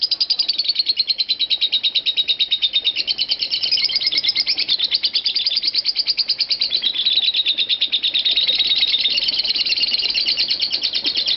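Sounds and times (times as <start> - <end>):
Lovebird giving a shrill high chattering song: 0.0 - 11.3.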